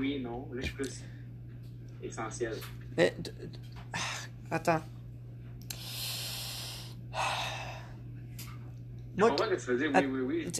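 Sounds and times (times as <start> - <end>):
speech: 0.0 - 1.2, 2.0 - 5.0, 7.1 - 7.3, 9.2 - 10.5
faint steady hum: 0.0 - 10.5
slow deliberate patterned breathing exercise: 5.7 - 8.2.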